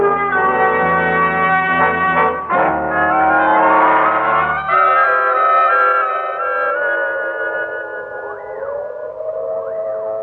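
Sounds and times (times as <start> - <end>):
prison escape siren wailing: 0.2 - 10.2.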